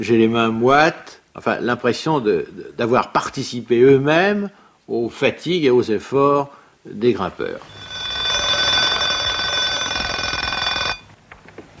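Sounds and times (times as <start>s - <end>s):
speech: 0.0s - 7.8s
alarm clock bell ringing with a dense metallic clatter: 7.6s - 11.0s.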